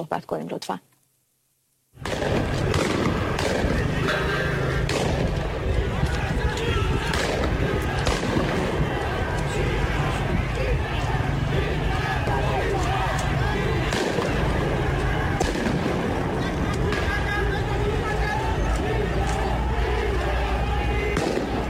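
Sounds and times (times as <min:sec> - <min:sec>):
speech: 0:00.0 - 0:00.9
gunfire from security forces: 0:02.0 - 0:04.2, 0:04.8 - 0:05.6, 0:07.0 - 0:09.0, 0:13.8 - 0:17.3, 0:21.1 - 0:21.6
dense crowd roar: 0:02.0 - 0:21.6
people shouting: 0:02.4 - 0:21.6
laughter: 0:16.0 - 0:21.1.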